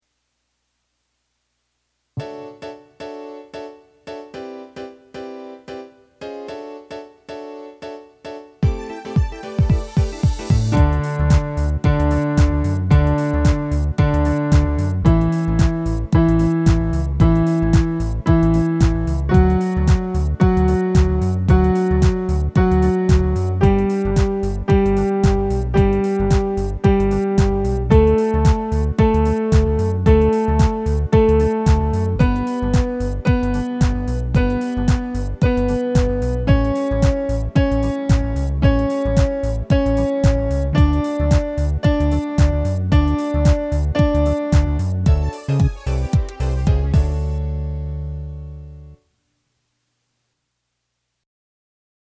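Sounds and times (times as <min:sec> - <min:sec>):
D scale played ascending: 0:08.6 - 0:48.8.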